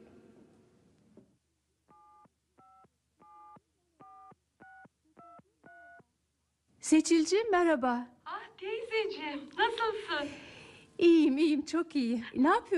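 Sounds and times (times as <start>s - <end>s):
phone keypad dialing tones: 1.9s - 6.0s
speech: 6.8s - 8.2s, 9.0s - 12.7s.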